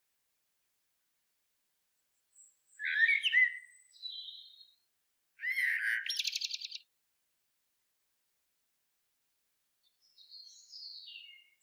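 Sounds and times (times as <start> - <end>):
Common blackbird Turdus merula singing fluty warbled phrase and squeaky twitter: 2.3 - 4.8, 5.4 - 6.9, 9.8 - 11.6.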